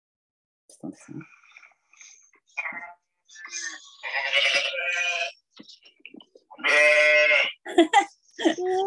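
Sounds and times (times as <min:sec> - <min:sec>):
speech: 0:00.7 - 0:01.4
sheep bleating inside a sheep shed: 0:02.8 - 0:05.4, 0:06.5 - 0:07.6.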